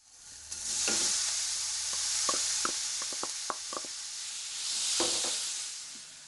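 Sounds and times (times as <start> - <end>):
minced meat with chopped ginger sizzling in a warm pot: 0.0 - 6.2
wooden spatula knocking and scraping a pot: 1.9 - 3.9.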